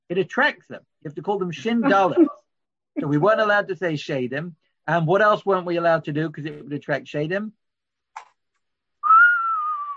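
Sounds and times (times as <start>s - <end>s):
speech: 0.1s - 2.4s, 3.0s - 7.6s
person whistling one long sustained note: 9.0s - 9.9s.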